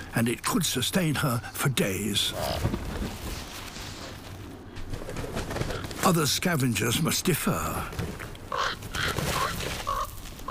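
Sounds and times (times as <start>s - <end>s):
speech: 0.2s - 3.2s, 6.1s - 9.2s
hungry crows cawing in harsh bursts: 5.5s - 6.0s, 8.4s - 10.4s.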